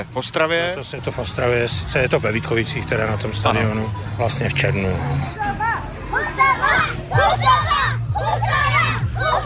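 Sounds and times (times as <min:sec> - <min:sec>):
speech: 0:00.0 - 0:05.6
elementary school pupils in Liberec cheering and shouting as fans: 0:05.4 - 0:09.4.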